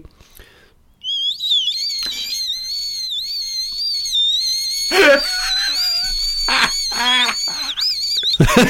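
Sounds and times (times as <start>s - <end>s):
brief breathy bursts: 0.2s - 0.8s, 4.9s - 7.8s
person whistling a wavering high tone imitating car roof bars howling: 1.2s - 8.6s
laughter: 4.9s - 8.6s.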